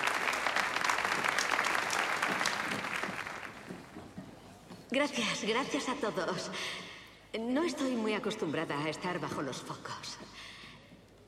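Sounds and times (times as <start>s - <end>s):
audience applause: 0.0s - 4.0s
speech: 4.9s - 10.2s.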